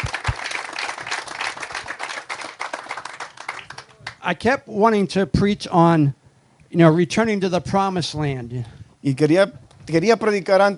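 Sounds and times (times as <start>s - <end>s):
audience applauding: 0.0s - 4.2s
speech: 4.2s - 10.7s.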